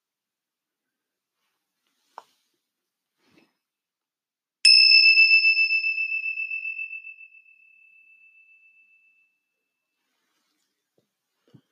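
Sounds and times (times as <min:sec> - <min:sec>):
meditation bell ringing: 0:04.6 - 0:09.5.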